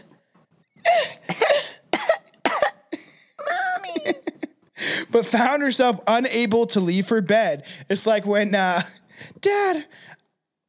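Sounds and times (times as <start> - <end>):
child coughing: 1.0 - 2.9
speech: 5.1 - 10.1.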